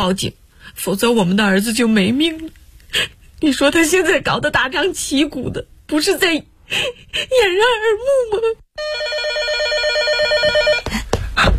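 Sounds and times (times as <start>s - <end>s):
speech: 0.0s - 10.6s
telephone ringing: 8.8s - 10.9s.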